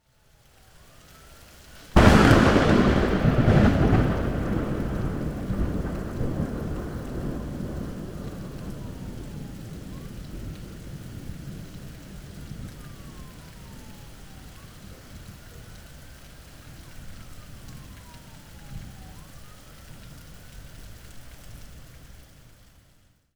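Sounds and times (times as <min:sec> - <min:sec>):
loud thunder crack: 0:02.0 - 0:13.9.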